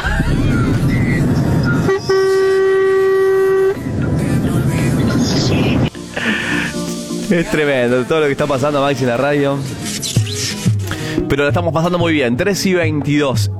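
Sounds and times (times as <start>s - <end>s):
outdoor street noise: 0.0s - 11.3s
speech: 0.2s - 0.8s, 7.3s - 9.8s, 11.2s - 13.5s
car horn honking: 1.6s - 4.1s.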